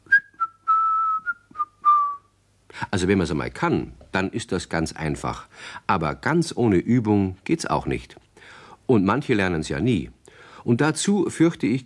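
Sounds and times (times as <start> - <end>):
person whistling a short tune: 0.0 - 2.3
speech: 2.9 - 8.2, 8.9 - 11.8.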